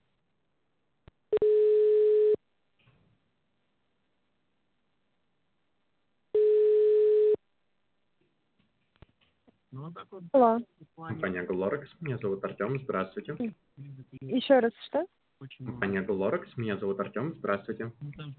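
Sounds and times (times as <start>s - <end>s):
telephone ringback tone while an automated system calls a subscriber: 1.4s - 2.4s, 6.4s - 7.4s
speech: 9.9s - 18.3s.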